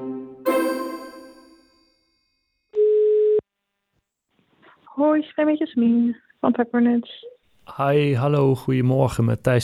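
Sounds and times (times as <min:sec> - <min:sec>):
steady electronic telephone ring tone: 0:00.5 - 0:01.9
chime-like telephone tones while calling a shop: 0:00.5 - 0:02.0
speech: 0:05.1 - 0:09.6.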